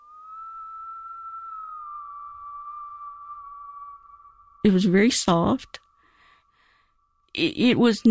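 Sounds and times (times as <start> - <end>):
soft aimless human whistling of a single wavering note: 0.0 - 7.2
speech: 4.6 - 5.8, 7.4 - 8.0.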